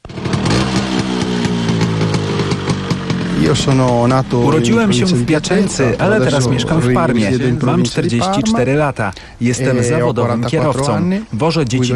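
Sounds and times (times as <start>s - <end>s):
legendary Italian scooter engine running: 0.0s - 6.4s
speech: 3.5s - 11.9s.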